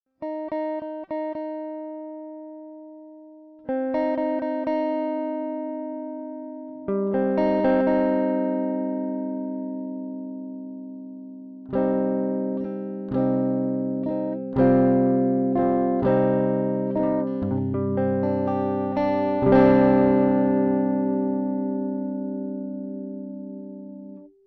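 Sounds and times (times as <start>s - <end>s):
guitar without effects: 0.2s - 24.4s.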